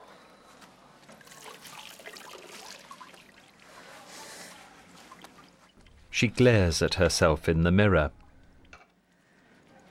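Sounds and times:
water running as someone washes at a small sink: 1.1 - 4.0, 4.9 - 6.1
water splashing: 1.2 - 4.1
speech: 6.2 - 8.2.

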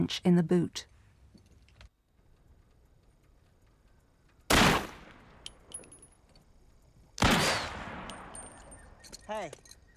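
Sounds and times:
speech: 0.0 - 0.9, 9.3 - 9.7
gunshots fired at a roadside sheriff election sign: 4.5 - 5.3, 7.2 - 8.4.

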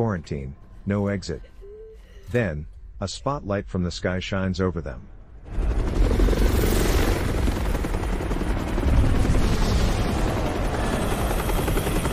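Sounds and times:
speech: 0.0 - 1.5, 2.3 - 5.8
helicopter hovering above a highway: 5.5 - 12.1.

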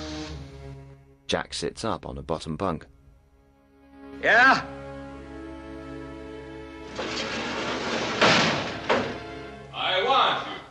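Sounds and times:
speech: 1.3 - 3.0, 4.2 - 4.8
prison cell door sliding open: 6.8 - 9.5
prison cell door knocking as it travels and stops: 7.0 - 9.4.

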